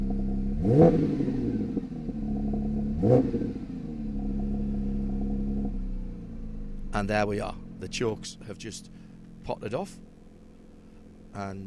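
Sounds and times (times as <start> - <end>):
Porsche 992 GT3 4-litre flat-six engine idling and revving: 0.0 - 11.4
speech: 0.6 - 1.5, 3.0 - 3.6, 7.0 - 10.1, 11.4 - 11.6.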